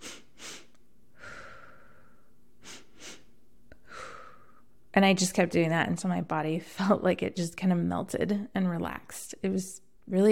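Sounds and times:
quick sniffing inhales through the nose: 0.0s - 3.3s
speech: 5.0s - 10.3s.

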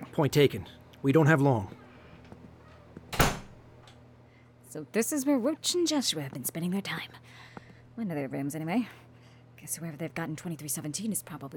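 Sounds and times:
speech: 0.2s - 1.8s, 4.7s - 9.0s, 9.6s - 11.5s
door being pushed open with a whoosh and creak: 2.6s - 3.7s
faint click of the door latch: 3.1s - 3.7s.

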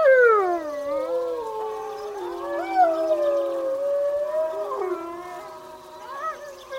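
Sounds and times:
wolves howling in a chorus: 0.0s - 6.7s.

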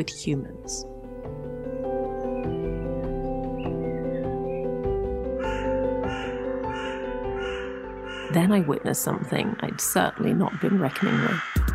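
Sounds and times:
speech: 0.0s - 1.4s, 8.4s - 11.7s
steady droning musical backdrop: 0.0s - 11.7s
black-and-grey hooded crow cawing in a city: 5.4s - 8.4s, 10.0s - 11.7s.

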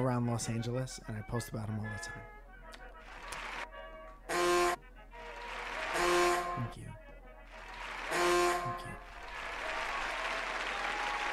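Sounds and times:
speech: 0.0s - 2.4s, 6.6s - 7.1s, 8.6s - 9.2s
large audience applauding and cheering: 3.2s - 3.7s, 5.2s - 6.5s, 7.5s - 11.3s.

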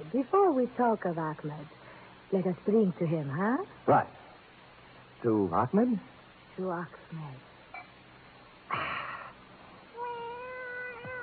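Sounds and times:
speech: 0.1s - 4.2s, 5.2s - 7.5s
cat meowing: 9.9s - 11.2s.

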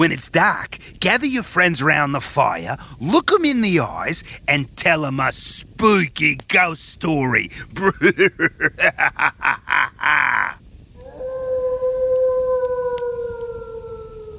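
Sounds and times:
speech: 0.0s - 10.4s
rhythmic croaking pulses: 0.0s - 14.3s
laughter: 7.7s - 10.6s
wolf howling: 11.0s - 14.3s.

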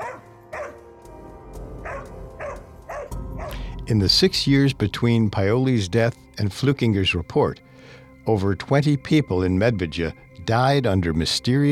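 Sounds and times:
large dog barking: 0.0s - 0.8s, 1.8s - 3.6s
low rumbling background: 2.2s - 7.0s
speech: 3.9s - 11.6s.

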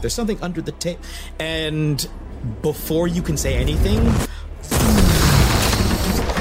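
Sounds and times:
speech: 0.0s - 5.0s
thunderous explosion rumbling: 3.5s - 6.4s.

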